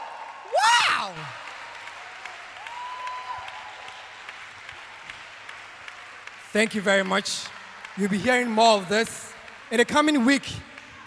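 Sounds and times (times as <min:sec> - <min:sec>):
worshipping audience clapping at a religious gathering: 0:00.0 - 0:11.0
person whooping shrilly: 0:00.5 - 0:01.3
speech: 0:01.0 - 0:01.4, 0:06.5 - 0:11.0.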